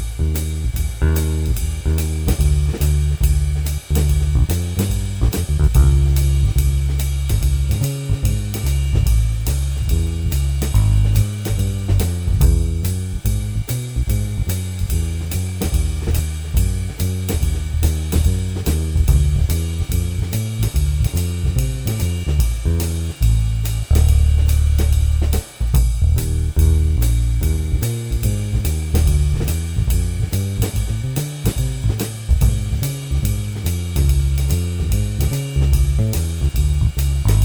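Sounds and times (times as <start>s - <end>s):
jazz keyboard accompaniment alone: 0.2s - 37.4s.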